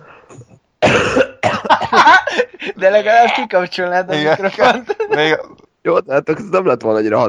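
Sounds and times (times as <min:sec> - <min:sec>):
person coughing harshly: 0:00.3 - 0:02.8
laughter: 0:01.5 - 0:05.6
speech: 0:02.0 - 0:07.2.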